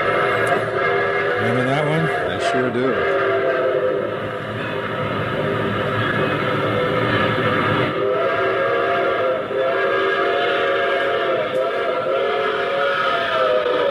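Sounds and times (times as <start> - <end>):
approaching train whistle: 0.0 - 13.9
speech: 1.4 - 3.4.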